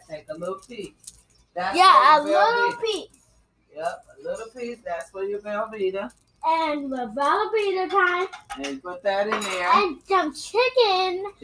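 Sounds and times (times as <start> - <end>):
speech: 0.1 - 3.2, 3.8 - 11.4
child talking in an animated sing-song voice: 1.7 - 3.1, 6.4 - 8.5, 9.6 - 11.4
metal utensils clinking and scraping against a cooking pot: 7.9 - 9.8.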